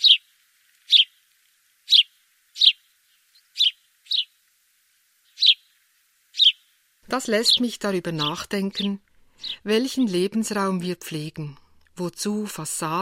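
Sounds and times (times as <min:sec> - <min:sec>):
sparrow chirping in short bright bursts: 0:00.0 - 0:00.2, 0:00.9 - 0:01.2, 0:01.9 - 0:04.4, 0:05.3 - 0:05.7, 0:06.4 - 0:10.1
speech: 0:07.1 - 0:12.9.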